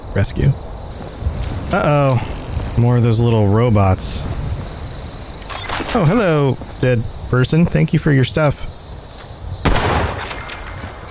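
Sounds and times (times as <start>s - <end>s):
speech: 0.2s - 0.7s, 1.7s - 4.4s, 5.9s - 8.7s
pistol gunshots in a video game: 9.6s - 11.0s.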